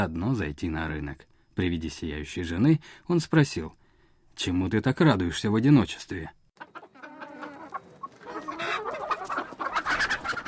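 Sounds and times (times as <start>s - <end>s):
speech: 0.0s - 3.8s, 4.4s - 6.4s
laying hens clucking: 6.6s - 10.4s.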